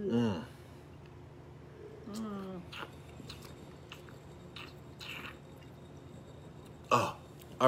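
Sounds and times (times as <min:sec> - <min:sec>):
low hum of appreciation: 0:00.0 - 0:00.5, 0:02.0 - 0:03.0
slurping sip of wine: 0:01.8 - 0:07.6
speech: 0:06.9 - 0:07.6.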